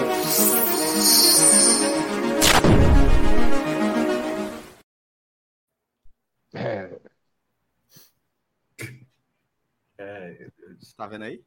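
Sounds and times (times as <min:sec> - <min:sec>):
short podcast jingle of layered electronic tones: 0:00.0 - 0:03.6
sharp whooshing impact hit: 0:02.4 - 0:03.6
speech: 0:10.8 - 0:11.4.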